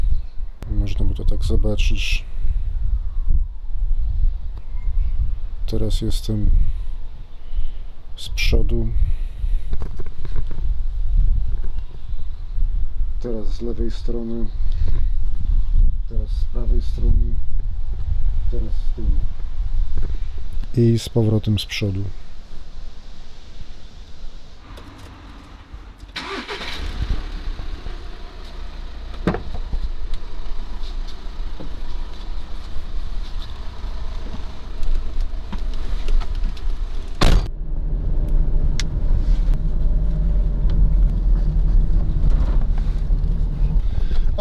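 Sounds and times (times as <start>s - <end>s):
road and wind noise: 0.0s - 44.4s
speech: 0.9s - 2.3s, 5.7s - 6.7s, 8.2s - 9.1s, 13.2s - 15.1s, 16.1s - 17.5s, 18.5s - 19.4s, 20.0s - 22.2s
car engine drone: 24.6s - 44.4s
car cabin rumble while driving: 28.6s - 44.4s.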